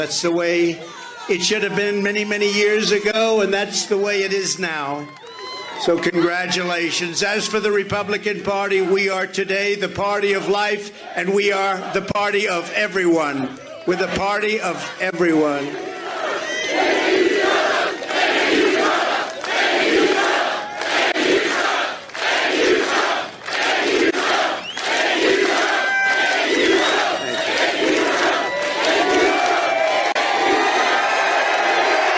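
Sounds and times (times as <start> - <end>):
rally crowd cheering: 0.0 - 9.2, 11.2 - 32.1
speech: 0.0 - 15.9
large rally crowd chanting: 13.4 - 32.1.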